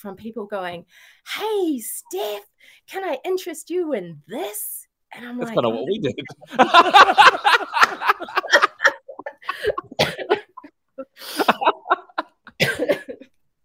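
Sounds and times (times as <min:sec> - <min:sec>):
speech: 0:00.0 - 0:08.7
breathy laughter: 0:06.0 - 0:13.2
person coughing in harsh bursts: 0:08.4 - 0:10.7, 0:12.6 - 0:13.2.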